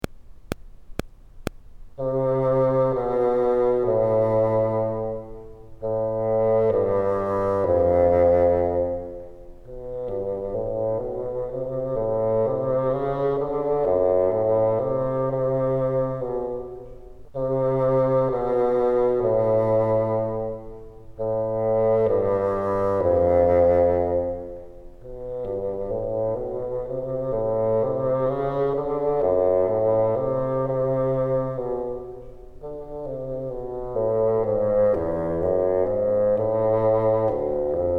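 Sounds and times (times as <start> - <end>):
bassoon bottom register: 2.0 - 37.9.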